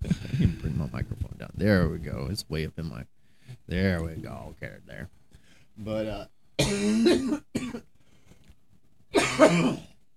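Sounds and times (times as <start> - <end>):
speech: 0.4 - 5.2, 5.8 - 7.9, 9.1 - 9.9
wet mucus-laden coughing: 6.6 - 7.9, 9.2 - 9.9.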